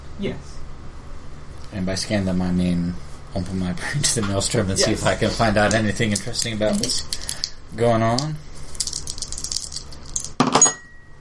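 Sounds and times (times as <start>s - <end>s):
speech: 0.2s - 0.5s, 1.7s - 8.5s
handful of dice clattering across a hard tabletop: 8.8s - 10.4s.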